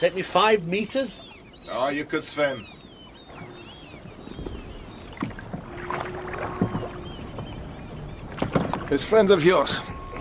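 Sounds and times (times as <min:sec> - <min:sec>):
speech: 0:00.0 - 0:02.8, 0:08.9 - 0:10.1
oars of a small rowed boat dipping and splashing: 0:00.0 - 0:10.1
faint creak of wood: 0:03.3 - 0:10.1.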